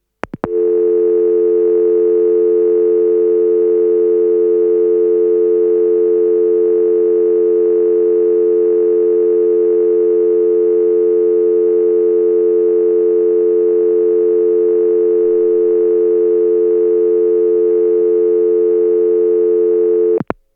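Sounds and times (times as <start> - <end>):
phone busy beep: 0.5 - 20.2.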